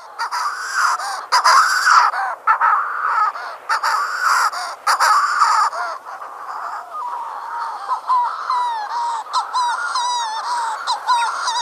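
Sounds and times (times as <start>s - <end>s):
Manx shearwater giving a harsh raspy call: 0.0s - 11.5s
speech: 0.2s - 0.7s.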